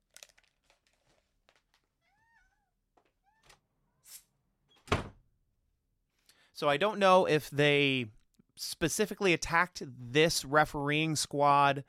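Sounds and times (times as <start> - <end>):
cat meowing: 2.0 - 4.0
speech: 6.6 - 11.8.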